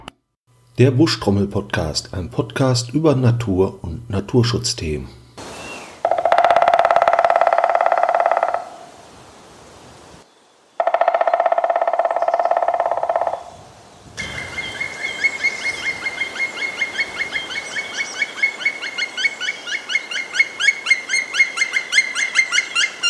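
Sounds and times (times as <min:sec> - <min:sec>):
speech: 0:00.8 - 0:05.2
black woodpecker calling: 0:05.2 - 0:08.9, 0:10.8 - 0:23.0.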